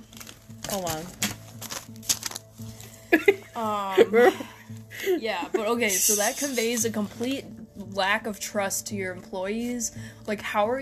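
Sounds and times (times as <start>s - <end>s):
paper rustling: 0.0s - 3.0s
speech: 0.7s - 1.2s, 3.6s - 10.7s.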